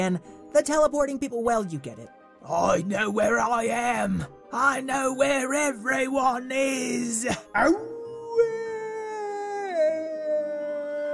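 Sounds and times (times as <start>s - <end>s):
speech: 0.0s - 8.6s
werewolf howl: 7.5s - 11.1s.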